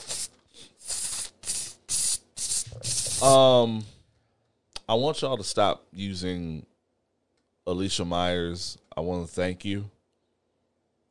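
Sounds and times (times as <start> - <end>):
voice imitating sprinkler-like hi-hats with hissing tss bursts: 0.0 - 3.9
speech: 3.2 - 4.0, 4.9 - 6.7, 7.7 - 10.0.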